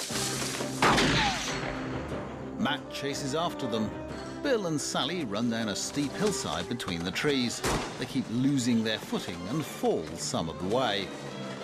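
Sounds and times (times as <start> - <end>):
shotgun blast fired during a chase on a wooded hillside: 0.8 - 1.8
speech: 2.6 - 11.3.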